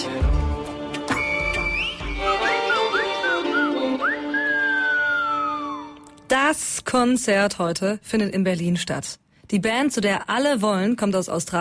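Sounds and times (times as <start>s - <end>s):
person whistling a tune: 1.1s - 6.0s
speech: 6.5s - 11.5s.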